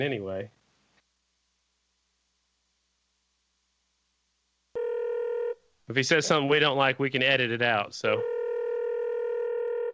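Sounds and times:
speech: 0.0 - 0.6, 5.9 - 8.3
ringback tone on an outgoing phone call: 4.8 - 5.6, 8.2 - 9.9.

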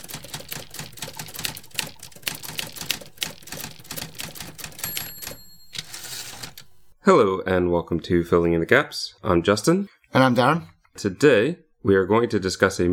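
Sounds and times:
brisk mechanical typing with clacking keystrokes: 0.0 - 6.9
speech: 7.1 - 12.9.

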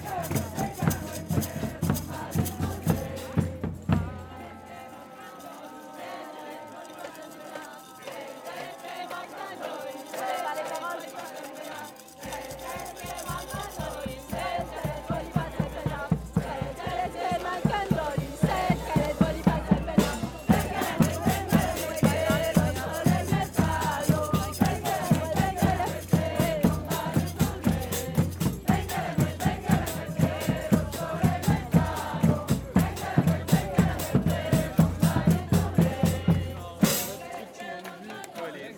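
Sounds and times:
steady rhythmic clatter: 0.0 - 38.7
dense street carnival crowd shouting and clamoring: 8.2 - 38.7.

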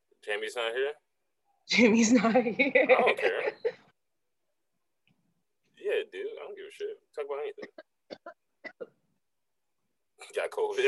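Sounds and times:
speech: 0.2 - 1.1, 1.7 - 3.6, 5.8 - 8.2, 10.2 - 10.8
laughter: 2.6 - 3.9
sharp coughs: 7.5 - 9.0.

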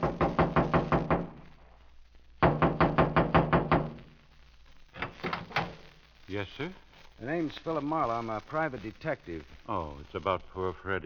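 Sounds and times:
quick firm knocking on a trailer door: 0.0 - 1.4, 2.4 - 4.0
speech: 6.4 - 11.0.

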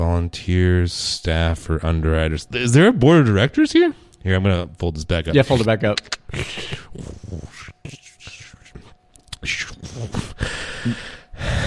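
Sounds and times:
speech: 0.2 - 8.0, 9.4 - 11.1
heavy out-of-breath gasping and breathing: 10.1 - 11.6.

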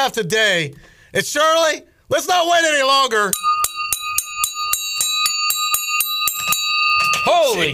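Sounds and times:
speech: 0.0 - 3.5, 7.3 - 7.7
metal bell struck rapidly with scissors: 3.4 - 7.7.

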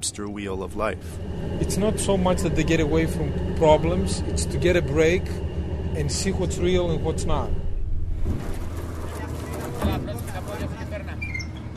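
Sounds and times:
speech: 0.0 - 7.6, 8.2 - 8.6
boat engine rumbling while docking: 0.0 - 11.7.

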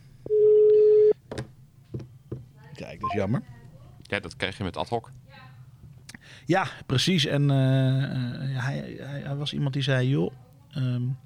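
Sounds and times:
telephone ringing tone over a line: 0.3 - 1.2
speech: 3.0 - 5.2, 6.4 - 11.2.

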